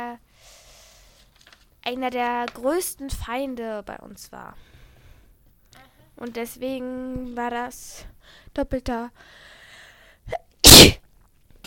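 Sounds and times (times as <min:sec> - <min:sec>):
speech: 0:01.8 - 0:04.7, 0:06.2 - 0:09.5, 0:10.3 - 0:11.0
loud sneeze: 0:10.3 - 0:11.0.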